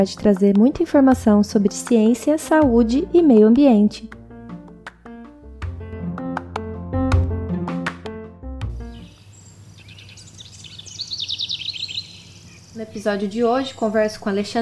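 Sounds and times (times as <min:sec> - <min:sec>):
speech: 0:00.0 - 0:04.2, 0:13.0 - 0:14.6
plucked instrumental music: 0:00.0 - 0:09.1
bird singing with high chirps and trills: 0:08.8 - 0:14.6.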